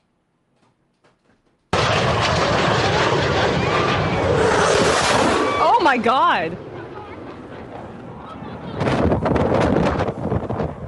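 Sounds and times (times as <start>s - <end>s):
jet aircraft roaring overhead, flying low over beach: 1.8s - 10.8s
faint crowd voices: 5.6s - 9.0s
speech: 5.8s - 6.6s.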